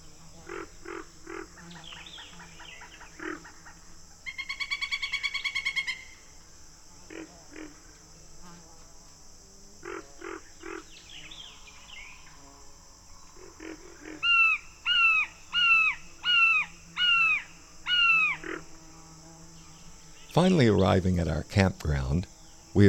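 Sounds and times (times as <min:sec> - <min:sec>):
steady insect drone: 0:00.0 - 0:22.8
pileated woodpecker calls: 0:00.5 - 0:06.2, 0:13.2 - 0:18.6
speech: 0:20.4 - 0:22.8.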